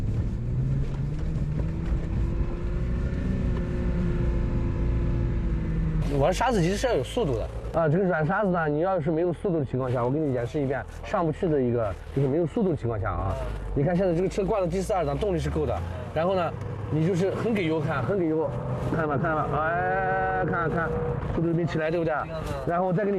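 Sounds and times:
off-road car engine revving while driving on soft sand: 0.0s - 12.2s, 12.8s - 23.1s
man talking: 6.0s - 23.1s.

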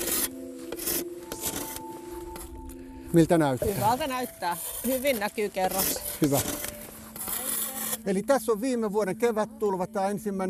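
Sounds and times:
saw blade scraping across a sediment core: 0.0s - 2.5s, 3.6s - 8.2s
speech: 3.1s - 6.6s, 8.0s - 10.4s.

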